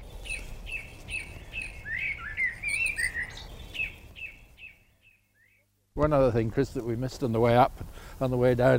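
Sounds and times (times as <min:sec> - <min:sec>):
blackbird fluting song: 0:00.0 - 0:05.7
bird chirping: 0:00.0 - 0:05.8
soft outdoor hum: 0:00.0 - 0:08.7
speech: 0:06.0 - 0:08.7.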